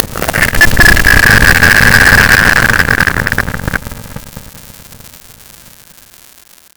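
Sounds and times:
screechy creature in daytime: 0.0 - 4.2.

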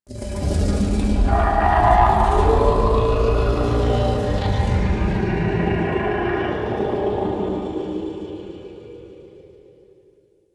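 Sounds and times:
growly vocal: 0.5 - 8.8.

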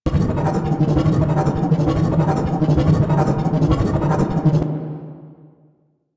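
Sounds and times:
boost gravity well loop: 0.0 - 4.8.

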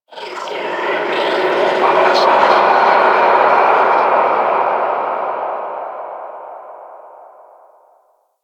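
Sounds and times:
medium ambience: 0.1 - 8.2.

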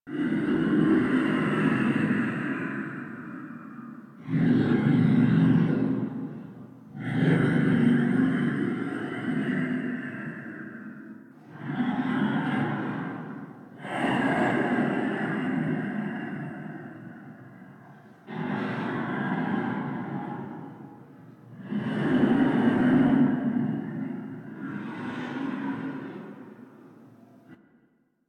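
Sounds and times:
dormant vessel alternate breathing loop: 0.2 - 27.9.

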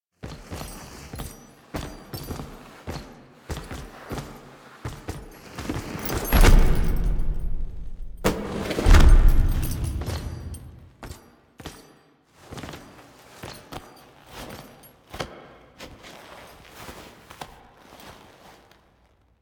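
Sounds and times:
courtyard foley footsteps: 0.2 - 18.4
person falling: 5.6 - 10.9.

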